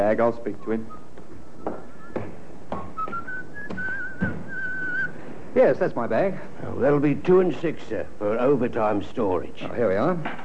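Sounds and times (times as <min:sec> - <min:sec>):
speech: 0:00.0 - 0:01.0, 0:05.6 - 0:10.4
man whistling a thin wavering tune: 0:00.6 - 0:05.2
soft thuds: 0:01.3 - 0:04.8.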